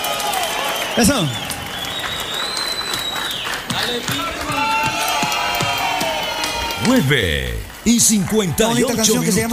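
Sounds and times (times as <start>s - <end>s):
audience crowd clapping: 0.0s - 9.5s
whistling: 0.5s - 4.6s
speech: 1.0s - 1.4s, 3.9s - 4.2s, 6.8s - 9.5s.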